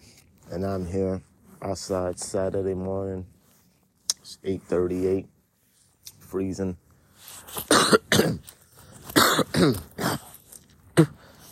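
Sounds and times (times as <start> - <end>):
speech: 0.5 - 3.4, 4.3 - 5.4, 6.3 - 6.8, 7.5 - 8.5, 9.6 - 10.0, 11.0 - 11.2
loud harsh wet coughs and throat-clearing: 7.6 - 11.4
person spitting: 9.1 - 11.4.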